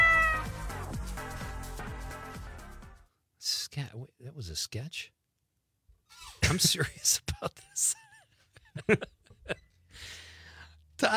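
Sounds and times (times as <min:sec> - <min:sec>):
cat meowing in a long wavering yowl: 0:00.0 - 0:00.6
speech: 0:03.8 - 0:05.2, 0:06.4 - 0:08.1, 0:08.8 - 0:10.2, 0:11.0 - 0:11.1.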